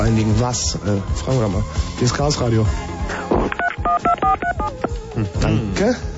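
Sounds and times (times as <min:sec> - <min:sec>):
speech: 0:00.1 - 0:03.2, 0:04.3 - 0:06.1
touch-tone telephone DTMF dialing beeps: 0:03.6 - 0:05.0.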